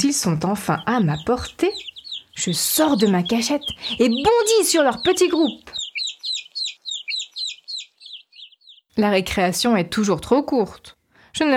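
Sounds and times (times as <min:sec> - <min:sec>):
speech: 0:00.0 - 0:05.8, 0:09.0 - 0:11.5
angry mother hen clucking: 0:00.0 - 0:08.8.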